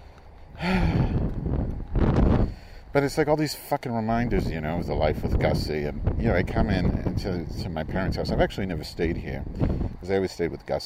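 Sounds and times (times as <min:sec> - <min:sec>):
wind rushing in gusts: 0:00.0 - 0:10.8
breathy vocal sound: 0:00.6 - 0:01.3
speech: 0:02.9 - 0:10.8.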